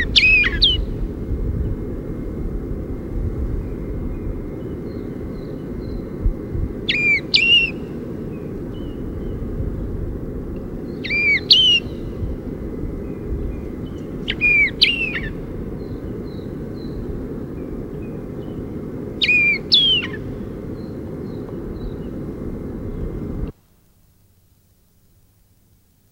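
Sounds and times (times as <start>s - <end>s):
White-crowned Wheatear whistling and chirping: 0.0s - 1.0s, 6.8s - 9.2s, 10.9s - 12.2s, 13.5s - 17.0s, 19.2s - 22.1s
low engine rumble: 0.0s - 23.6s.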